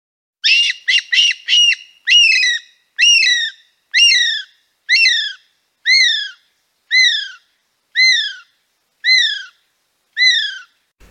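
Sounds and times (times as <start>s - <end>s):
rare nocturnal bird singing whistled notes: 0.4s - 9.6s, 10.2s - 10.8s.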